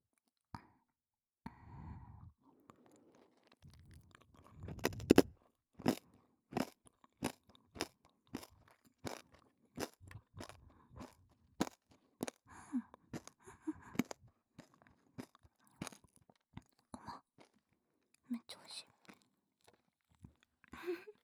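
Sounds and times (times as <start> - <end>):
breathing: 1.5 - 3.3, 10.6 - 11.2, 12.4 - 14.3
crunchy snack being chewed: 2.7 - 18.1, 18.9 - 20.8.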